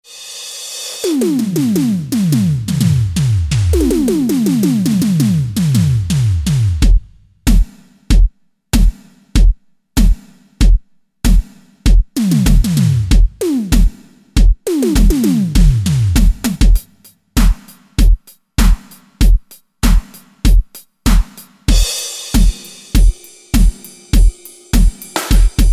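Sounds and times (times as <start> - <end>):
Roland SC-880 electronic rhythm set: 0.0 - 25.7.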